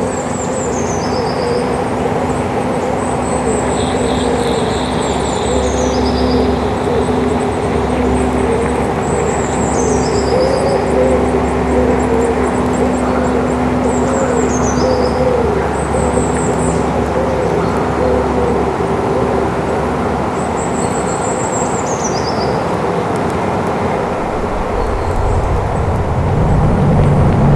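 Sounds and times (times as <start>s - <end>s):
pigeons cooing in woods processed with effects: 0.0s - 20.2s
steady dense wash of rumbling effects noise: 0.0s - 21.8s, 22.6s - 27.5s.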